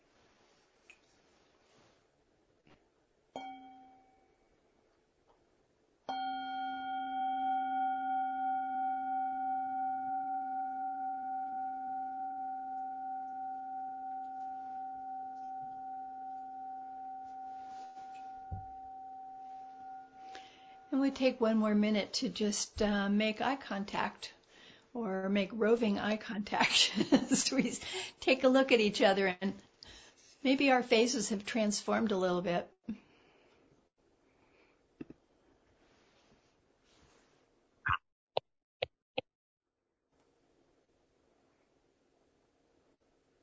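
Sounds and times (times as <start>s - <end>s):
meditation bell struck and ringing out: 3.4s - 4.4s, 6.1s - 21.4s
speech: 21.0s - 24.4s, 25.3s - 33.0s.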